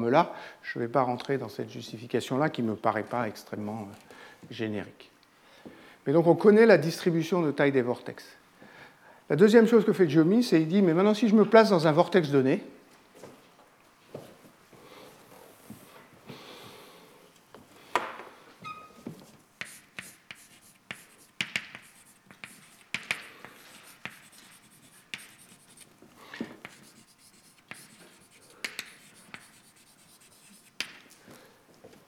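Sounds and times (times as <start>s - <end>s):
speech: 0.0s - 8.4s, 9.3s - 12.8s
writing on a board during a physics lecture: 19.2s - 31.1s.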